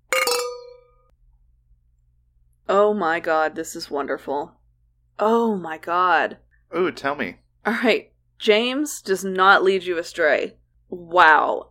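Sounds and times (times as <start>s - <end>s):
wine glasses clinking in a toast: 0.1s - 1.0s
speech: 2.7s - 4.6s, 5.2s - 11.6s.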